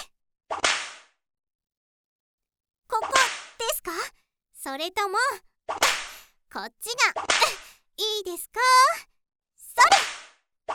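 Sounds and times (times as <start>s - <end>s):
whip being swung with a swish and crack: 0.5s - 1.1s, 5.7s - 6.1s, 9.9s - 10.7s
speech: 4.6s - 9.1s.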